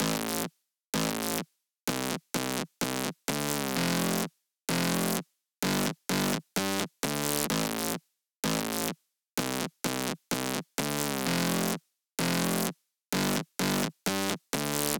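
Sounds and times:
house bass loop: 0:00.0 - 0:14.9.

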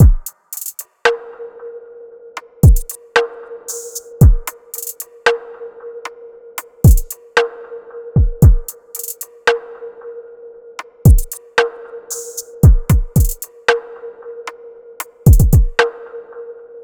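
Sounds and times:
RnB drum loop: 0:00.0 - 0:00.9, 0:02.6 - 0:03.0, 0:03.7 - 0:05.1, 0:06.8 - 0:07.2, 0:08.2 - 0:09.3, 0:11.1 - 0:11.4, 0:12.1 - 0:13.5, 0:15.3 - 0:15.8.

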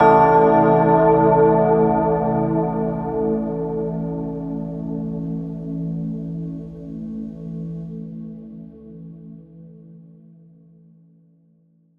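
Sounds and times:
bell chime in A minor at 60 BPM: 0:00.0 - 0:05.0.

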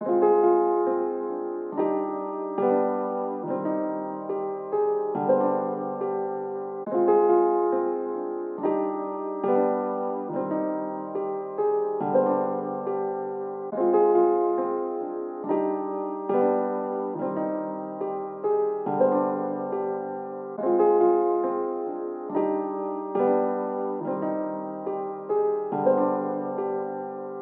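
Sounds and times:
piano melody loop in C minor at 140 BPM: 0:00.0 - 0:27.4.

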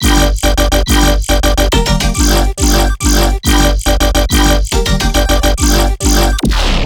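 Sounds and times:
melodic bass loop: 0:00.0 - 0:06.5.

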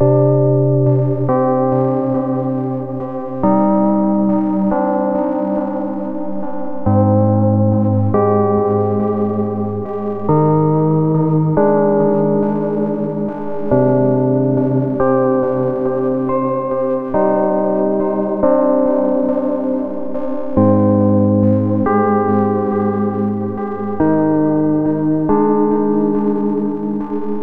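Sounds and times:
detuned granular lo-fi electric piano loop in C minor: 0:00.0 - 0:27.4.

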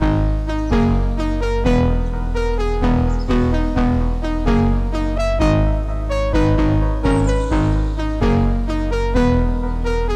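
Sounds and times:
jungle breakdown loop in G sharp minor at 128 BPM: 0:00.0 - 0:10.1.

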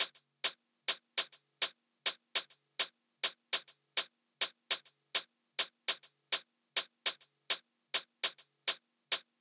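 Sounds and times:
hi-hat loop: 0:00.0 - 0:09.3.

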